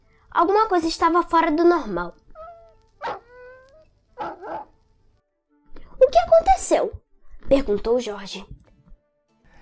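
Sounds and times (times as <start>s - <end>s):
speech: 0.4s - 2.2s, 6.6s - 8.6s
dog howling: 2.4s - 4.8s.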